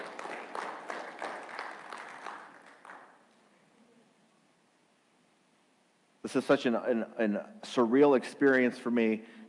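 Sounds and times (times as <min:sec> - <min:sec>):
audience applause: 0:00.0 - 0:03.2
speech: 0:06.3 - 0:09.4.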